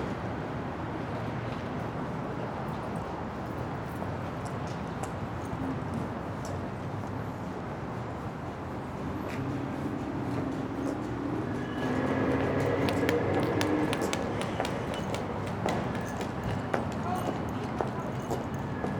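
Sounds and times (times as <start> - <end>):
traffic and city noise outside a building entrance: 0.0 - 18.9.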